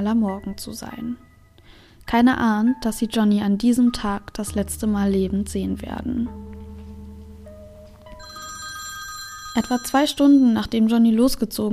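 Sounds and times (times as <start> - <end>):
speech: 0.0 - 1.3, 2.1 - 6.4, 9.6 - 11.7
telephone bell ringing: 8.1 - 10.8.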